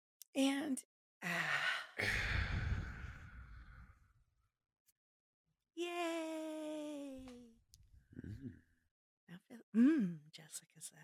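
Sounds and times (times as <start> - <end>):
speech: 0.4 - 2.6, 5.8 - 6.5, 9.4 - 11.0
deep noisy breath in: 2.0 - 4.0.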